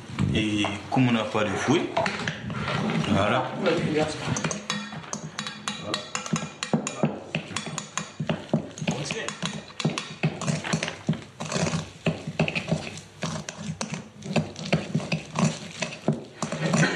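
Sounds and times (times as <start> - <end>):
speech: 0.3 - 2.3, 3.1 - 4.5
sugar stirred into a chocolate mixture in a bowl: 4.0 - 6.7, 7.5 - 16.9.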